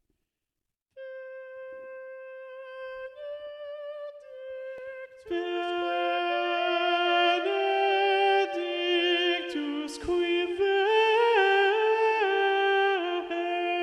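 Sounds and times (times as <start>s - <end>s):
schola choir singing with alto predominant: 5.4s - 13.7s.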